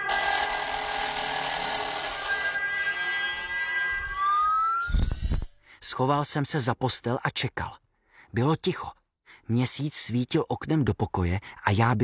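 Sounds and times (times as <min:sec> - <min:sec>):
alarm clock ringing with metallic jangle: 0:00.1 - 0:05.6
speech: 0:06.0 - 0:12.0.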